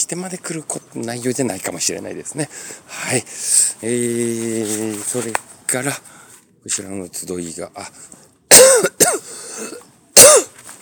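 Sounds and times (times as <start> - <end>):
speech: 0.1 - 9.7
person coughing harshly: 8.5 - 10.6.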